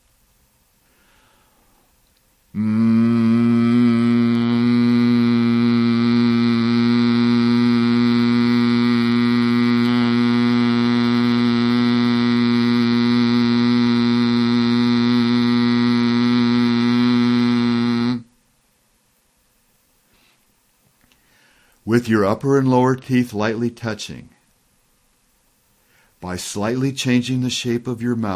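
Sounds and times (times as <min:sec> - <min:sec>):
person humming a buzzing note imitating a bumblebee in a relaxation exercise: 0:02.5 - 0:18.4
speech: 0:22.0 - 0:24.4, 0:26.3 - 0:28.3.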